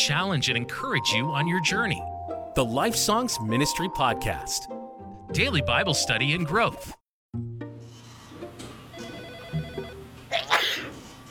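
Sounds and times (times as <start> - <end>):
speech: 0.0 - 7.5
single sharp sneeze: 10.3 - 11.0.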